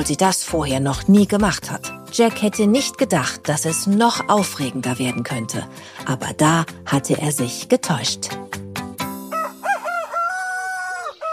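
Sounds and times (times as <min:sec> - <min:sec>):
speech: 0:00.0 - 0:08.6
rooster crowing: 0:09.3 - 0:11.3.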